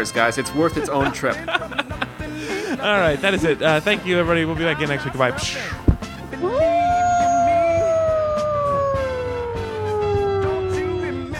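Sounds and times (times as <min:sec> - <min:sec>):
speech: 0:00.0 - 0:05.8
laughter: 0:00.6 - 0:03.3, 0:04.6 - 0:05.8
human voice imitating a howling animal: 0:06.4 - 0:11.3.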